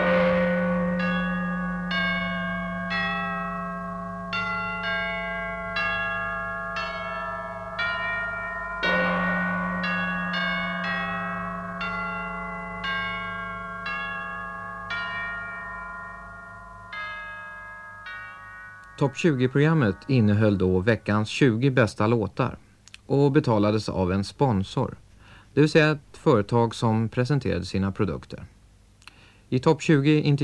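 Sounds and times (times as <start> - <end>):
bell chimes of a radio chart show signature tune: 0.0 - 21.4
low sustained hum: 0.0 - 21.7
speech: 19.0 - 25.0, 25.6 - 28.5, 29.5 - 30.4.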